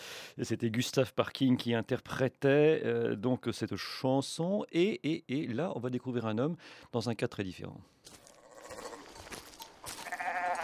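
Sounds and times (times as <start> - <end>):
speech: 0.4 - 8.2
sheep bleating: 8.3 - 9.2, 9.8 - 10.6.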